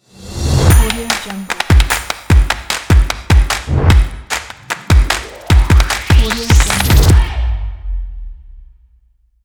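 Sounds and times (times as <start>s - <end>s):
dynamic percussion in an ident: 0.2s - 7.9s
upbeat claps in an ident: 0.7s - 7.3s.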